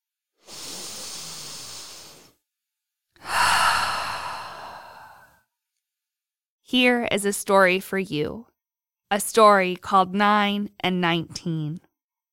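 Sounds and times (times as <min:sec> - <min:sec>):
deep breath: 0:00.4 - 0:02.4, 0:03.2 - 0:05.4
speech: 0:06.7 - 0:08.5, 0:09.1 - 0:11.8.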